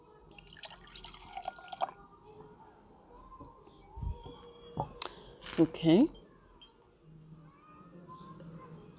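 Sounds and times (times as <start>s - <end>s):
drink pouring into a glass: 0.3s - 2.0s
speech: 5.6s - 6.2s.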